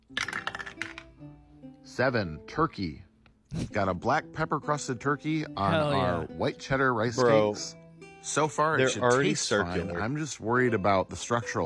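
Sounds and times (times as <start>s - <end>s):
dice rolling and rattling across a surface: 0.1s - 1.1s
speech: 2.0s - 11.6s.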